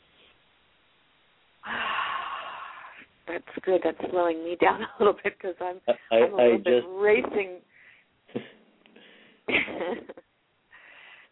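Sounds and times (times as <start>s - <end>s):
deep breath: 1.6s - 3.1s, 7.7s - 9.5s, 10.7s - 11.3s
speech: 3.3s - 7.6s.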